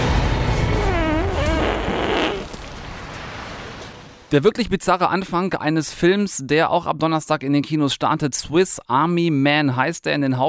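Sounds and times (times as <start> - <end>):
steady low rumble: 0.0 - 3.4
long drawn-out fart: 0.6 - 2.6
speech: 4.3 - 10.4.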